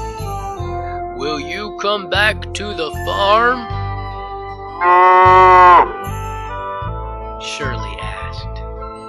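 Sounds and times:
speech: 1.4s - 3.7s, 4.8s - 6.0s, 7.4s - 8.5s
cow mooing: 4.8s - 6.0s.

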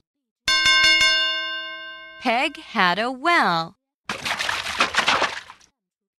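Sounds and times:
bell ringing with bright metallic strikes: 0.5s - 2.8s
speech: 2.2s - 3.8s.

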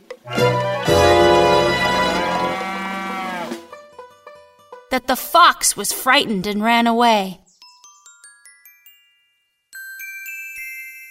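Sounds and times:
cow mooing loudly in a deep bellow: 0.4s - 3.7s
speech: 5.0s - 7.4s.

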